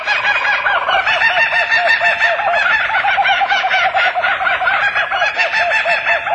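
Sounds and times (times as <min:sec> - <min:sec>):
laughing kookaburra call: 0:00.0 - 0:06.3.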